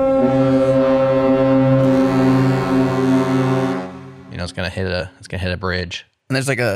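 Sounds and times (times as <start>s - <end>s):
deep foghorn blast: 0.0s - 5.2s
speech: 4.6s - 6.7s.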